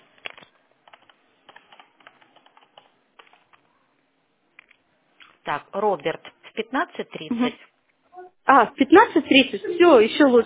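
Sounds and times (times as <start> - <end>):
typing on a computer keyboard: 0.2 - 3.6
speech: 5.5 - 7.7, 8.5 - 10.4.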